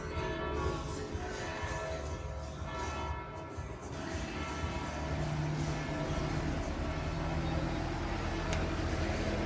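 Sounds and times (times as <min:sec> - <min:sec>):
church bells ringing faintly in Lecce: 0:00.0 - 0:08.4
slow white tourist road train engine humming in Lecce: 0:00.0 - 0:09.4.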